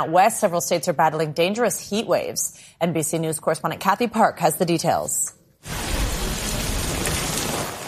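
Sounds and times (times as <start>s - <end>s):
speech: 0.0s - 5.4s
heavy rain from a severe thunderstorm in the southeastern states: 5.6s - 7.8s.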